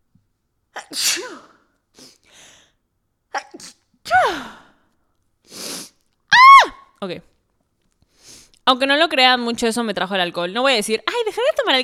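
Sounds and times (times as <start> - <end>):
person sneezing loudly: 0.8 - 2.2, 3.3 - 4.7
person sniffing: 2.0 - 2.5, 5.5 - 6.0
person breathing and exhaling: 2.0 - 2.8
speech: 7.0 - 7.4, 8.7 - 11.8.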